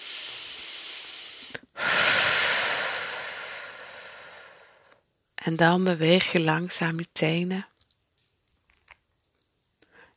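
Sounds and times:
slow breathing in and out during a relaxation exercise: 0.0s - 5.1s, 9.8s - 10.1s
speech: 5.5s - 7.7s.

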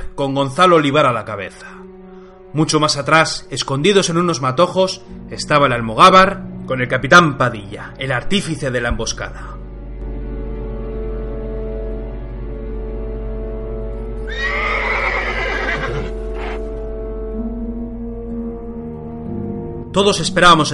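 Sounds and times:
speech: 0.2s - 1.9s, 2.5s - 9.6s, 19.9s - 20.7s
black horse pulling a carriage neighing: 14.2s - 16.7s
horse snorting: 15.0s - 16.7s.

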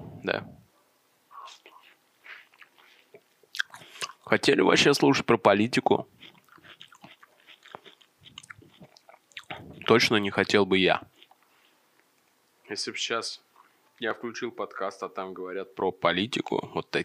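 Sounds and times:
speech: 0.2s - 0.6s, 4.3s - 6.2s, 9.9s - 11.1s, 12.7s - 13.4s, 14.0s - 17.0s
biting and chewing watermelon: 1.5s - 4.3s, 5.8s - 11.8s.

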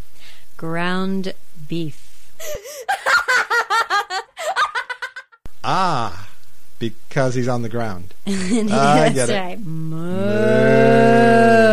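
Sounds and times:
speech: 0.6s - 3.1s, 5.6s - 6.2s, 6.8s - 11.4s
laughter: 2.5s - 5.4s, 8.3s - 9.4s
cow mooing: 9.9s - 11.7s.

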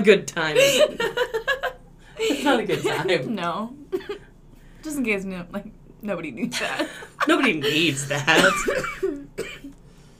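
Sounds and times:
speech: 0.0s - 1.3s, 2.2s - 4.2s, 4.8s - 9.6s
single short rough cough: 7.8s - 9.8s.

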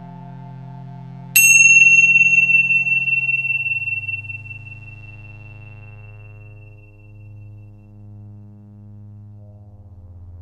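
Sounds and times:
soft steady low drone: 1.4s - 5.5s
meditation bell ringing: 1.4s - 5.6s.

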